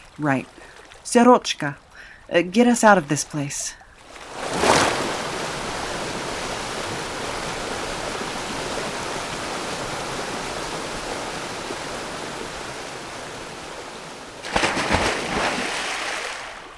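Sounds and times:
speech: 0.2s - 3.8s
loud gush of water bursting through walls: 4.2s - 16.7s.

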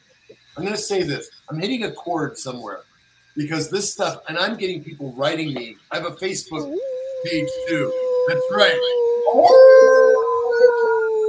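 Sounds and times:
speech: 0.6s - 9.9s
person imitating a wolf howl: 6.6s - 11.2s.

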